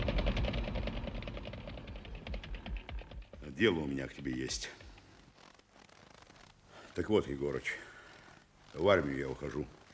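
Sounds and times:
engine idling with rhythmic chugging and mechanical rattle: 0.0s - 3.2s
speech: 3.5s - 4.8s, 7.0s - 7.9s, 8.7s - 9.8s.

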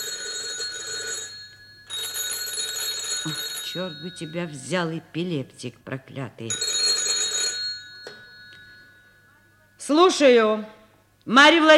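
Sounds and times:
telephone bell ringing: 0.0s - 4.7s, 6.5s - 10.0s
speech: 3.2s - 6.7s, 9.9s - 11.7s.

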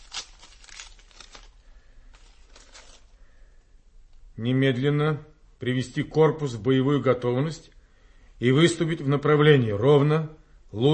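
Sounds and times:
sealed packet of military orders being torn open: 0.0s - 3.2s
speech: 4.4s - 7.7s, 8.4s - 10.9s.

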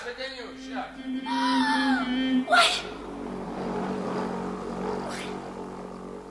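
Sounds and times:
car driving past: 0.2s - 6.2s.

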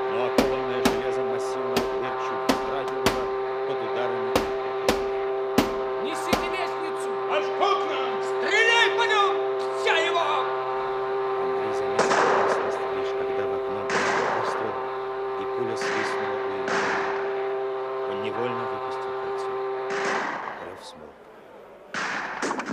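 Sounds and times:
loud steady droning alarm whistle: 0.0s - 20.4s
gunshots heard from inside a boiler room: 12.0s - 12.7s, 13.9s - 14.6s, 15.7s - 17.3s, 19.9s - 20.9s, 21.9s - 22.7s.

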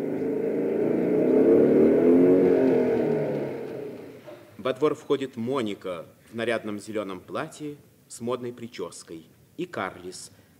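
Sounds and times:
motorcycle engine rumbling while driving up to a gate and idling: 0.0s - 4.6s
speech: 4.7s - 10.4s.

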